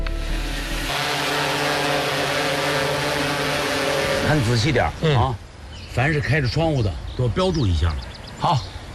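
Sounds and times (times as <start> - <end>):
drone flying up an apartment building with rotors buzzing: 0.0 - 5.7
speech: 4.3 - 5.4, 6.0 - 8.7.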